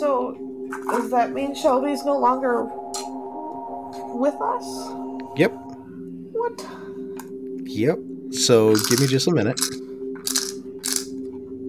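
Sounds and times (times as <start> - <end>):
speech: 0.0 - 2.8, 4.1 - 5.6, 6.4 - 6.8, 7.7 - 9.9
small dice clattering as they are put away: 8.7 - 11.1.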